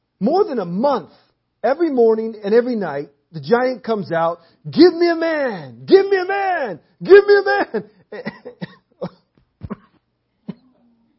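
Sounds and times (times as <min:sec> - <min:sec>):
speech: 0:00.2 - 0:09.2
harsh person coughing: 0:08.1 - 0:10.8.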